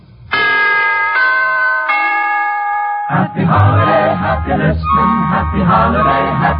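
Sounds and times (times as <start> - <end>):
chimes playing a holiday tune: 1.1 - 6.5
festive music: 2.9 - 6.5.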